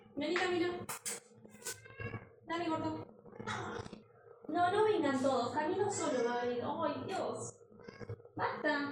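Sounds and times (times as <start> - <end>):
speech: 0.2 - 1.0, 4.7 - 7.6, 8.4 - 8.9
cat meowing loudly at a door: 1.6 - 2.2, 3.4 - 3.9, 5.9 - 6.5.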